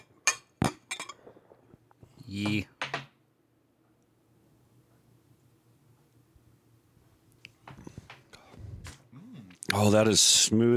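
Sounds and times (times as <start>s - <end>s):
several glasses clinking in a toast: 0.0s - 1.3s
speech: 2.3s - 2.8s, 9.8s - 10.7s.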